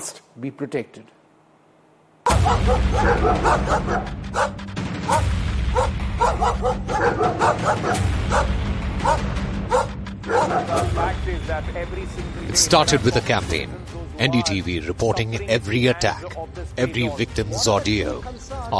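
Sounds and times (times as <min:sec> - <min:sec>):
speech: 0:00.0 - 0:01.2, 0:02.4 - 0:09.4, 0:10.3 - 0:18.7
pack of street dogs in India's National Capital Region barking and yipping: 0:02.3 - 0:11.1.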